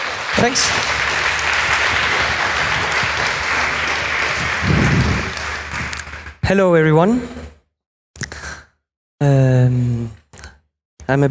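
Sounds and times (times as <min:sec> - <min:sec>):
audience applause welcoming a speaker: 0:00.0 - 0:06.5
speech: 0:00.4 - 0:01.0, 0:06.5 - 0:07.4, 0:09.2 - 0:10.2, 0:11.1 - 0:11.2.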